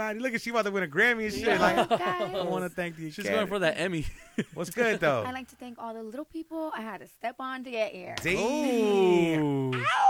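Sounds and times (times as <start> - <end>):
speech: 0.0 - 10.0
human voice imitating a dying cat yowl: 8.6 - 10.0.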